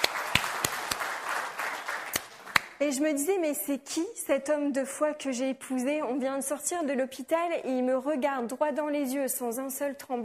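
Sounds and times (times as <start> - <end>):
audience applause: 0.0 - 2.8
single claps: 0.0 - 2.8
speech: 2.8 - 10.2.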